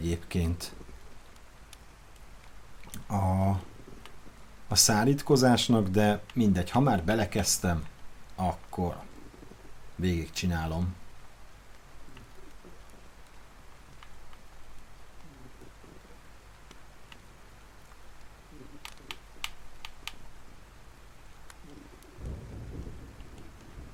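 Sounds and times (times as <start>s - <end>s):
speech: 0.0s - 0.8s, 3.0s - 3.7s, 4.7s - 9.1s, 10.0s - 11.0s
steady rain: 0.0s - 23.9s
thunder rumbling outside in a long low roll: 21.7s - 23.9s.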